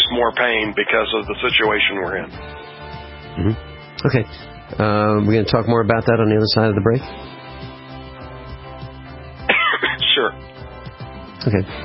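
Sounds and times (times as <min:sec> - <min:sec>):
speech: 0:00.2 - 0:02.8, 0:03.4 - 0:07.4, 0:11.4 - 0:11.8
man's stifled cough and throat clearing: 0:09.5 - 0:10.4.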